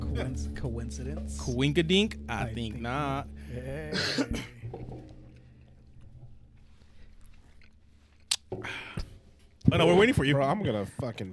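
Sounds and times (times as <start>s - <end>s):
speech: 0.2s - 4.6s, 9.7s - 11.3s
person chewing food against a microphone: 4.6s - 8.5s.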